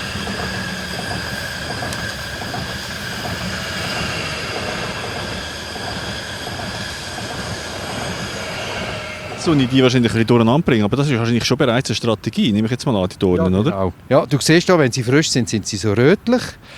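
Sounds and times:
faint high metallic squealing of a train: 0.0s - 11.3s
train wheels rumbling on rails: 0.0s - 12.8s
speech: 9.4s - 16.7s.

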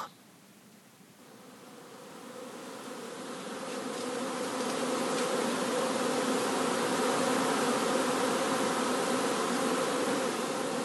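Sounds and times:
honeybees buzzing around a hive: 1.1s - 10.8s.

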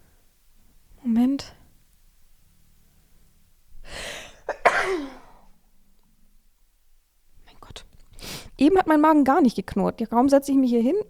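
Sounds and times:
person sneezing: 3.9s - 5.5s
speech: 8.6s - 11.0s.

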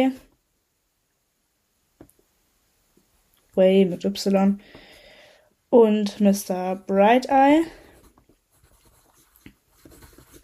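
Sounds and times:
speech: 0.0s - 0.2s, 3.6s - 4.8s, 5.7s - 7.8s
pen scratching on paper: 7.6s - 10.4s.

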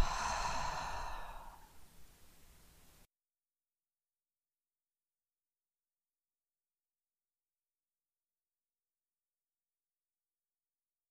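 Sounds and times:
person exhaling deeply through the mouth during yoga relaxation: 0.0s - 1.8s.

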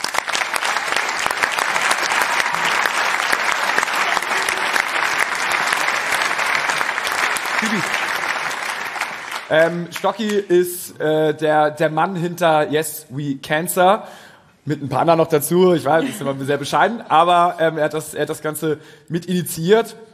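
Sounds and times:
applause from a sizable audience: 0.0s - 10.4s
speech: 9.5s - 20.1s.

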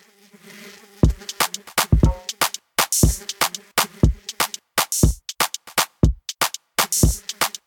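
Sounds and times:
sampled bee buzzing in a song: 0.0s - 4.7s, 6.9s - 7.6s
punchy rhythmic drum beat: 1.0s - 7.6s.

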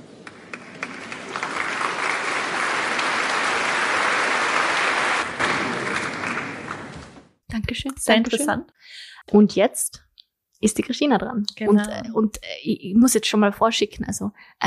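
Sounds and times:
applause from a small group: 0.1s - 7.2s
speech: 7.7s - 10.0s, 10.6s - 14.6s.

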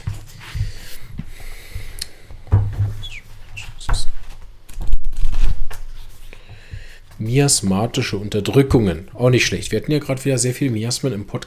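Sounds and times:
book pages being flipped: 3.0s - 6.5s
speech: 7.2s - 11.4s.

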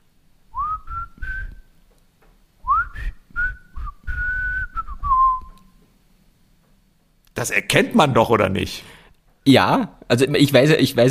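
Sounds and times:
person whistling a TV series intro tune: 0.6s - 1.7s, 2.6s - 5.7s
speech: 7.4s - 11.0s.

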